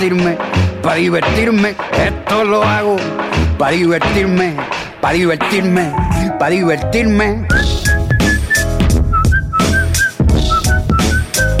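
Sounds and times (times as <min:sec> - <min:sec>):
speech: 0:00.0 - 0:07.8
loud full musical backing: 0:00.0 - 0:11.5
person whistling a bright repeating melody: 0:07.5 - 0:11.5.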